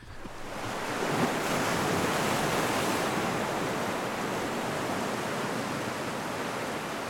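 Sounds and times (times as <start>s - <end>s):
sea waves at sea: 0.0s - 7.0s.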